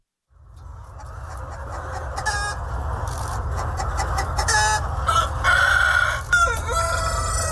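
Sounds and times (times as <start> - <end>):
Vietnamese dragon chicken roosters crowing and clucking: 0.6 - 7.5.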